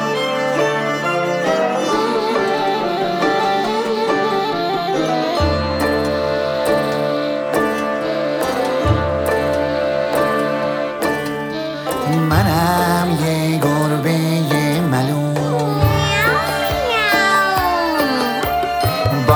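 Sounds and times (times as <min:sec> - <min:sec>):
bright steady musical accompaniment: 0:00.0 - 0:19.3
voice imitating a cat meowing: 0:15.4 - 0:19.3.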